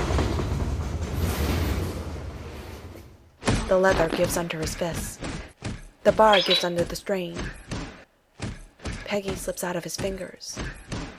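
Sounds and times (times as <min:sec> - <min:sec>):
train with steel wheels and carriages rumbling down the tracks: 0:00.0 - 0:03.3
speech: 0:03.7 - 0:05.2, 0:06.0 - 0:07.6, 0:09.1 - 0:10.8.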